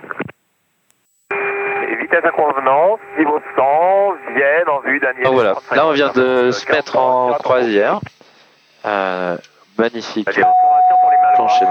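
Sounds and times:
high electronic cockpit warning tone: 0:01.3 - 0:06.6, 0:10.4 - 0:11.7
speech: 0:02.1 - 0:08.2, 0:08.8 - 0:10.6, 0:11.4 - 0:11.7.

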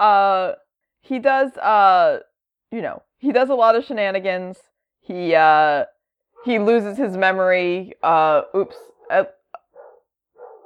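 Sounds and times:
speech: 0:00.0 - 0:09.4
dogs barking: 0:06.4 - 0:06.7, 0:08.6 - 0:10.6.

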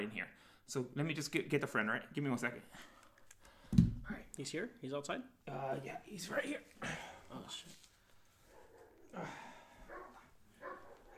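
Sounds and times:
speech: 0:00.0 - 0:03.0, 0:03.7 - 0:07.9, 0:09.1 - 0:09.5
dogs barking: 0:08.5 - 0:09.2, 0:09.8 - 0:11.1.

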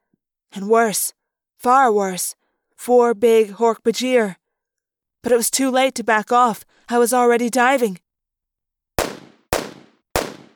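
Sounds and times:
speech: 0:00.5 - 0:04.4, 0:05.2 - 0:08.0
gunshots: 0:09.0 - 0:10.5.

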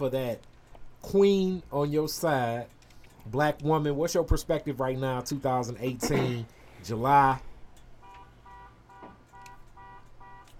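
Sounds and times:
speech: 0:00.0 - 0:07.5
car alarm blaring across the street: 0:07.9 - 0:10.5.

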